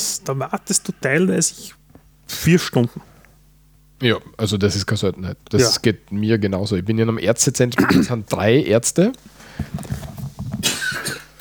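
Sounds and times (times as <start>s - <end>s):
speech: 0.2s - 3.1s, 4.0s - 9.8s
harsh cough: 7.8s - 8.2s, 10.6s - 11.3s.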